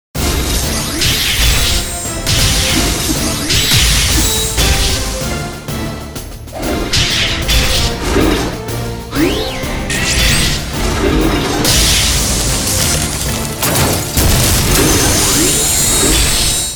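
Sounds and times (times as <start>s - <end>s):
robot battle scene sound effects: 0.2s - 5.8s, 6.4s - 16.7s.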